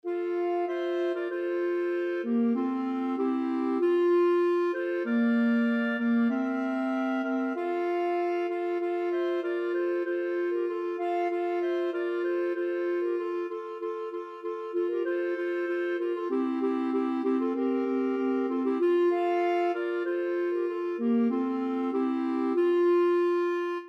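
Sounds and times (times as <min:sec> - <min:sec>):
clarinet trio playing a carol: 0:00.0 - 0:23.8.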